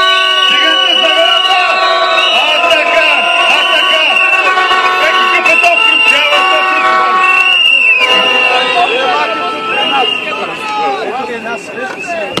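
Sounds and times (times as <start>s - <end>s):
large crowd cheering, shouting and applauding at a rally: 0.0s - 11.0s.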